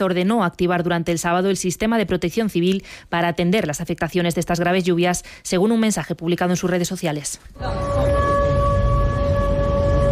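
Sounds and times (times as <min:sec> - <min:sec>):
speech: 0:00.0 - 0:08.3
air raid sirens wailing at night during a drone attack: 0:07.6 - 0:10.1.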